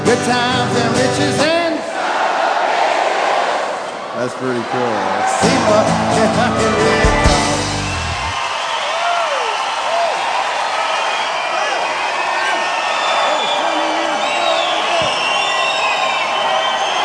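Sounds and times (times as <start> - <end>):
speech: 0.1 - 1.5, 4.2 - 7.6
large crowd roaring and cheering: 1.4 - 17.0
scattered whoops and shouts: 7.8 - 17.0.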